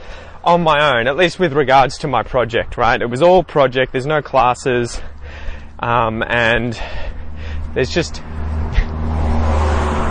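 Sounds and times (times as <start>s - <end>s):
road traffic rumble outdoors: 0.0s - 10.0s
speech: 0.4s - 8.4s
car passing on road: 4.8s - 10.0s.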